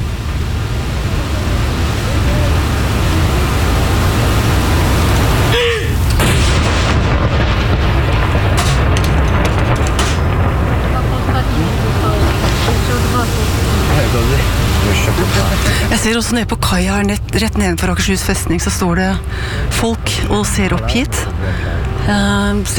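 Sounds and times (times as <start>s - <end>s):
heavy wind or surf-like noise: 0.0s - 22.7s
saluting cannon shot at Akershus Fortress: 6.1s - 12.9s
speech: 16.2s - 22.7s.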